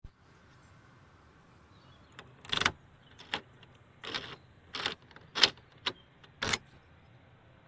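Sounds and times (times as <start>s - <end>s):
door unlocking: 2.2s - 6.8s.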